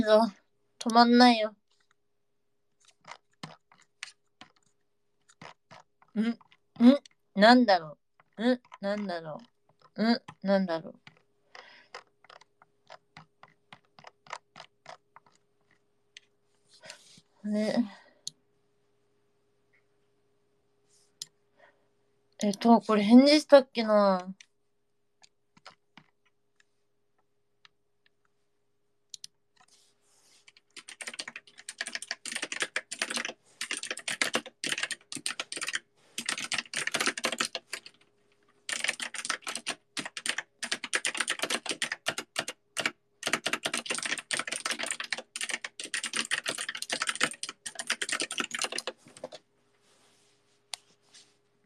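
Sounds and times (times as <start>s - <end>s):
speech: 0.0s - 1.6s, 6.2s - 11.0s, 17.4s - 18.0s, 22.4s - 24.4s
typing on a computer keyboard: 2.8s - 7.2s, 11.0s - 16.3s, 25.6s - 26.2s, 30.5s - 49.4s.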